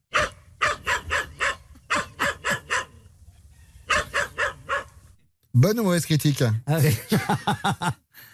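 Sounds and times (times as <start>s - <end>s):
Tibetan spaniel barking with high yaps: 0.1s - 3.0s, 3.9s - 5.0s
speech: 5.6s - 8.3s
laughter: 6.8s - 8.0s.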